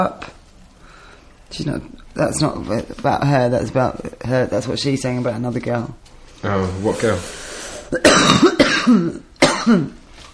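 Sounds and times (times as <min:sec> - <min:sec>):
speech: 0:00.0 - 0:00.3, 0:01.5 - 0:10.0
person coughing harshly and clearing throat: 0:07.9 - 0:10.0.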